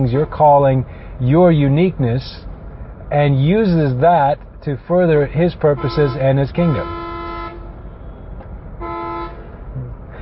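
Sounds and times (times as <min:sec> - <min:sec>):
speech: 0:00.0 - 0:02.5, 0:03.1 - 0:07.0
street traffic rumble: 0:00.0 - 0:10.1
car horn blasts in street traffic: 0:05.7 - 0:09.5.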